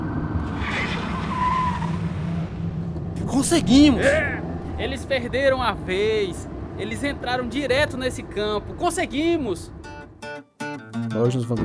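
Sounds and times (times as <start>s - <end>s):
car tires squealing while skidding through a big curve: 0.0s - 8.2s
car engine roaring during a police chase: 0.0s - 9.8s
speech: 3.4s - 9.8s, 11.1s - 11.6s.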